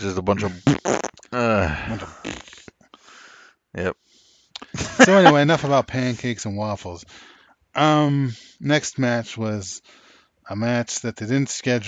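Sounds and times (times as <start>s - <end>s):
speech: 0.0s - 1.0s, 1.9s - 2.2s, 5.0s - 11.8s
voice blowing a loud buzzing raspberry imitating a fart: 0.4s - 2.7s
laughter: 4.7s - 5.9s.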